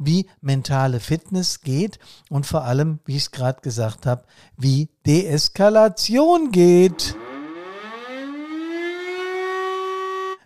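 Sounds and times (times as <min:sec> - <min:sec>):
speech: 0:00.0 - 0:07.2
emergency siren winding up to a high wail: 0:06.8 - 0:10.4.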